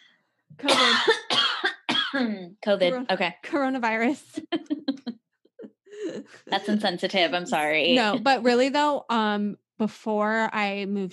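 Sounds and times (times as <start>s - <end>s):
speech: 0.6s - 1.2s, 2.2s - 5.0s, 6.0s - 11.1s
person coughing: 0.6s - 2.5s.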